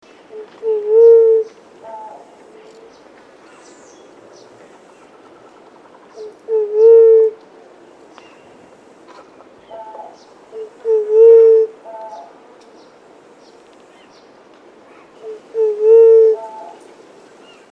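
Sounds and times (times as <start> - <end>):
White-tipped dove calling: 0.3 - 3.8, 4.5 - 7.4, 8.2 - 12.4, 15.0 - 16.9.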